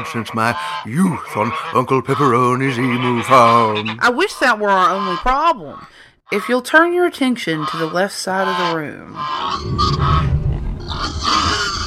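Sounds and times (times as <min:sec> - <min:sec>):
pigs grunting and snorting: 0:00.0 - 0:04.2, 0:08.5 - 0:11.8
speech: 0:00.0 - 0:11.7.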